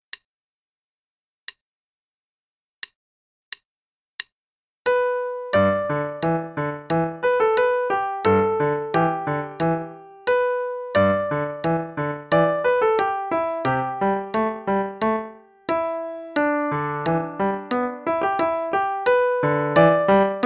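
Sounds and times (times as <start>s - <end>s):
piano: 4.9s - 20.4s.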